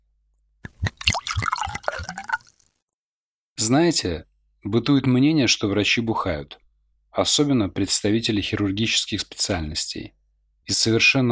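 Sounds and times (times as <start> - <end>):
Absolut vodka glugging from a one-litre bottle into a glass: 0.6 - 2.7
speech: 3.7 - 6.6, 7.2 - 11.3.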